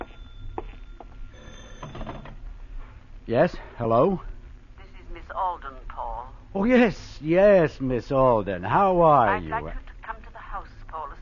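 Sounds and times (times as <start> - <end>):
telephone bell ringing: 0.0 - 2.5
low hum: 0.0 - 11.2
speech: 3.3 - 4.3, 5.3 - 9.8.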